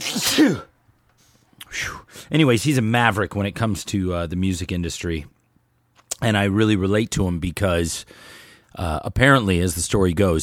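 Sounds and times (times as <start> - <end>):
sneeze: 0.0 - 0.7
speech: 0.4 - 0.7, 1.7 - 5.4, 6.2 - 10.4.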